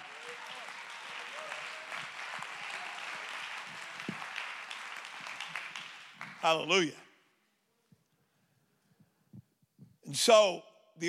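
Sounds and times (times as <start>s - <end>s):
audience clapping hands: 0.0s - 6.8s
speech: 6.4s - 7.0s, 10.3s - 11.0s.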